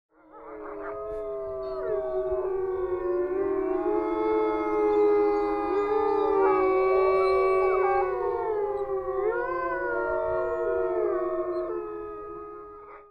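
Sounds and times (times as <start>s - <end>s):
wolves howling: 0.2s - 13.0s.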